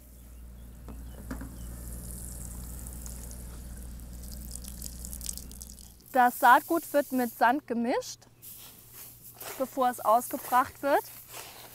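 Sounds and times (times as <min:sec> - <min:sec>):
water soaking garden soil: 0:01.6 - 0:07.6, 0:08.5 - 0:11.7
small water drips and splashes: 0:02.5 - 0:07.2
speech: 0:06.2 - 0:08.6, 0:09.6 - 0:11.2.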